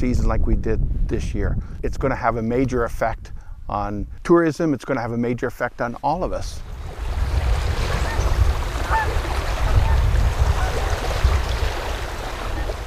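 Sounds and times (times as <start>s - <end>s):
heavy wind buffeting the microphone beside a river: 0.0s - 4.4s, 6.2s - 12.8s
speech: 0.0s - 7.0s
flowing river water: 6.0s - 12.8s
faint goose honks and calls: 6.8s - 12.8s.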